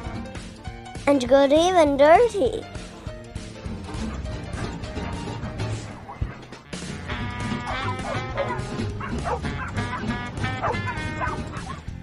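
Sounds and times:
speech: 0:01.1 - 0:02.8
several dogs barking and yipping while playing: 0:03.8 - 0:11.9
dogs making high whiny yelps: 0:05.8 - 0:06.6, 0:07.5 - 0:11.9.

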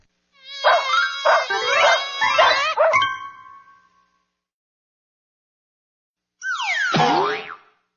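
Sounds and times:
dog yelping and howling: 0:00.6 - 0:03.2.

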